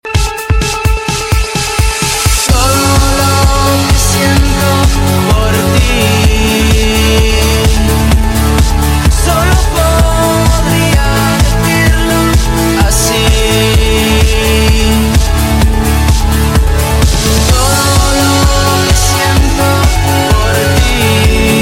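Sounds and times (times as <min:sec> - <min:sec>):
latin beat: 0:00.0 - 0:21.6.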